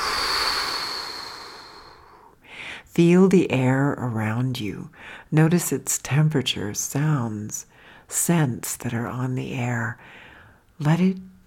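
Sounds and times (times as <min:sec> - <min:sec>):
person exhaling through the mouth during a guided breathing exercise: 0:00.0 - 0:02.8
speech: 0:03.0 - 0:10.2, 0:10.8 - 0:11.3.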